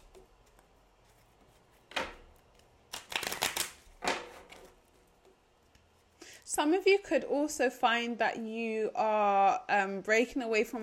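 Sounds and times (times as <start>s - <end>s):
healing mantra cards being shuffled: 0.0s - 6.1s
speech: 6.6s - 10.8s.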